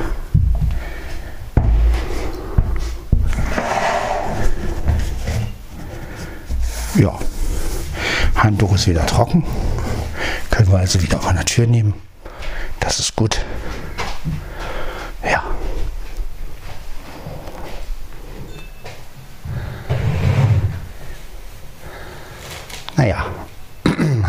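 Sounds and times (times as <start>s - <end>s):
low steady noise: 0.0s - 24.2s
speech: 7.0s - 7.3s, 8.4s - 9.7s, 10.6s - 12.1s, 12.9s - 13.6s
drawer opening or closing with knocks and sliding scrapes: 19.9s - 20.8s.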